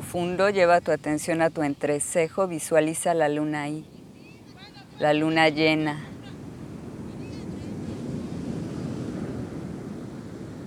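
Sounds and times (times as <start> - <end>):
ocean surf rumbling: 0.0 - 10.6
speech: 0.1 - 3.9, 5.0 - 6.1.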